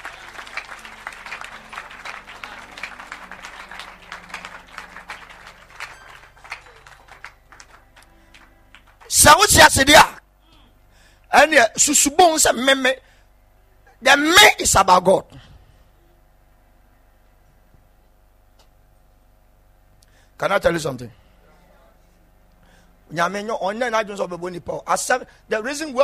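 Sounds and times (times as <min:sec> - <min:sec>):
audience clapping during a sermon: 0:00.0 - 0:09.7
speech: 0:09.2 - 0:10.2, 0:11.4 - 0:13.1, 0:14.1 - 0:15.4, 0:20.4 - 0:21.3, 0:23.1 - 0:26.0.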